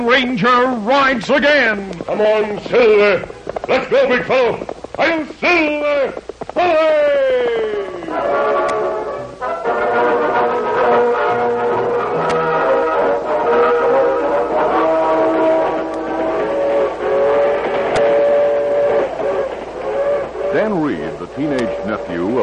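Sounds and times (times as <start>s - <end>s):
speech: 0.0s - 8.7s
passenger train from California rumbling along the rails: 0.0s - 22.4s
sharp rail clicks: 0.5s - 7.8s, 12.0s - 22.4s.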